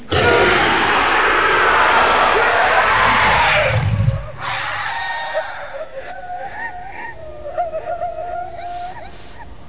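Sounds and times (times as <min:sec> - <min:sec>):
distant scream: 0:00.1 - 0:06.0.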